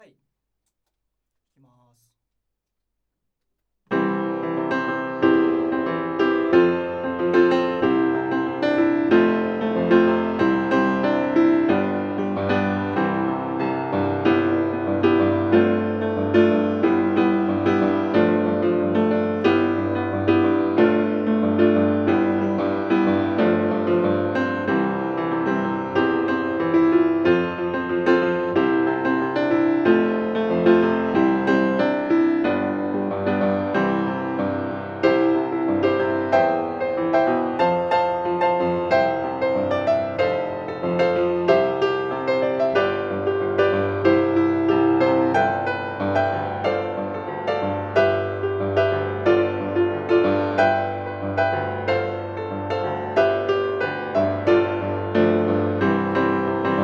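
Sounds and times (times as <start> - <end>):
piano outside: 3.9 - 56.8.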